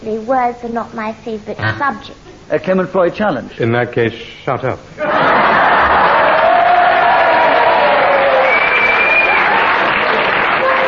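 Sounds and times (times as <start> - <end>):
speech: 0.0 - 5.3
studio audience applause: 5.0 - 10.8.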